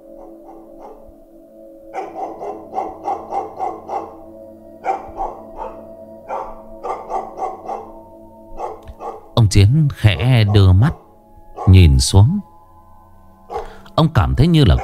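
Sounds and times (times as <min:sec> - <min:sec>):
neighbour's dog barking from outside the yard: 0:00.2 - 0:01.0, 0:01.9 - 0:08.0, 0:08.6 - 0:09.3, 0:10.2 - 0:11.7, 0:13.5 - 0:13.7
speech: 0:09.5 - 0:11.0, 0:11.6 - 0:12.5, 0:14.0 - 0:14.8.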